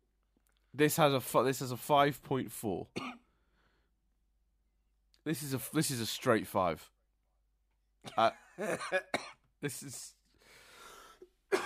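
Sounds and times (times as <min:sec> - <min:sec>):
speech: 0:00.7 - 0:03.2, 0:05.2 - 0:07.0, 0:08.0 - 0:10.2
person coughing: 0:02.9 - 0:03.3, 0:08.0 - 0:09.5, 0:11.5 - 0:11.6
breathy exhale: 0:10.4 - 0:11.3.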